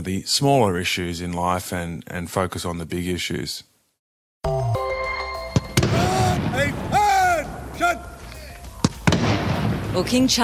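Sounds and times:
speech: 0:00.0 - 0:03.7, 0:10.0 - 0:10.4
ceremonial cannon fire marking a royal accession proclamation: 0:05.7 - 0:07.1, 0:08.9 - 0:10.4
crowd noise: 0:05.7 - 0:10.3.

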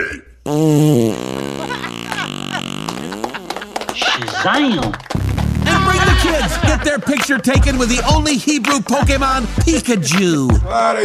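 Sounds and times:
speech: 0:00.1 - 0:01.2, 0:04.4 - 0:05.0, 0:06.5 - 0:11.0
fart sound effect: 0:00.5 - 0:04.0, 0:05.1 - 0:05.9
laughter: 0:01.1 - 0:05.1, 0:05.7 - 0:08.2.

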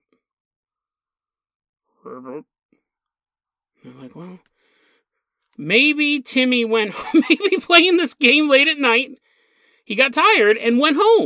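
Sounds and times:
person imitating a frog croaking: 0:02.0 - 0:02.4
speech: 0:02.1 - 0:02.8, 0:03.8 - 0:04.5, 0:05.6 - 0:09.2, 0:09.9 - 0:11.2
laughter: 0:06.9 - 0:07.9.

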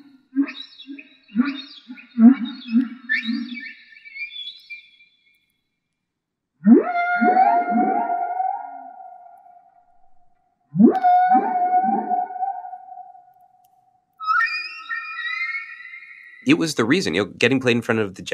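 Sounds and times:
humpback whale song: 0:00.0 - 0:04.3, 0:06.6 - 0:10.2, 0:10.8 - 0:13.3, 0:14.2 - 0:17.0
speech: 0:16.5 - 0:18.3.

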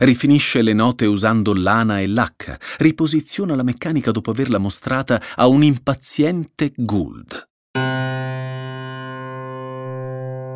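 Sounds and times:
speech: 0:00.0 - 0:08.0
first note struck on a freshly tuned piano: 0:07.8 - 0:10.5.

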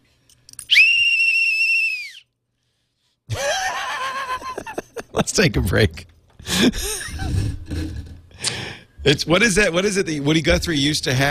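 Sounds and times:
whistle blown in a loud steady blast: 0:00.7 - 0:02.3
laughter: 0:03.3 - 0:05.4, 0:06.4 - 0:08.2
speech: 0:05.2 - 0:07.6, 0:09.0 - 0:11.2
brief warbling vocal sound like a laugh: 0:07.0 - 0:08.4.

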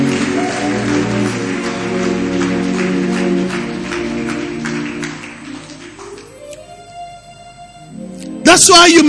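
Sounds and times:
crowd clapping in rhythm: 0:00.0 - 0:06.8
sustained keyboard chords: 0:00.0 - 0:09.0
speech: 0:08.6 - 0:09.0.

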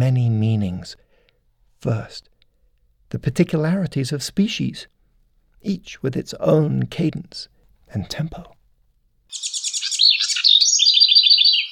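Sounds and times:
speech: 0:00.0 - 0:01.0, 0:01.8 - 0:02.3, 0:03.1 - 0:04.9, 0:05.6 - 0:08.6
house wren singing: 0:09.3 - 0:11.6.

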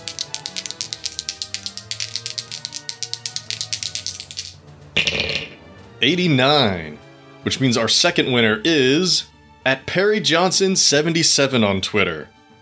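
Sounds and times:
dice rolled to draw a giveaway winner: 0:00.0 - 0:05.5
speech: 0:06.0 - 0:12.4.

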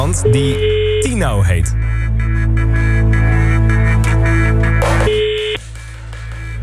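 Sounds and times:
speech: 0:00.0 - 0:02.7
steady loud droning music bed: 0:00.0 - 0:06.6
electronic telephone dialing or ring tone: 0:00.2 - 0:01.2, 0:05.1 - 0:05.6.

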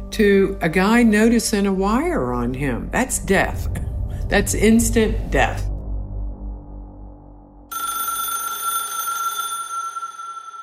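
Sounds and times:
low rumbling hum: 0:00.0 - 0:07.7
speech: 0:00.2 - 0:05.7
telephone ringing with a bright steady electronic trill: 0:07.7 - 0:10.6.

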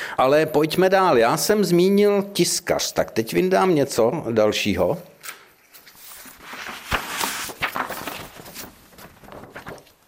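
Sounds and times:
speech: 0:00.2 - 0:05.1
sheet of printed paper rustling and crinkling: 0:05.6 - 0:10.0.

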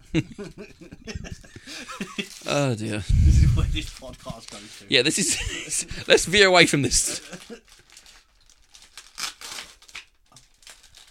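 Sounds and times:
speech: 0:00.1 - 0:07.4
sticky tape pulled and torn while wrapping: 0:08.7 - 0:11.0.

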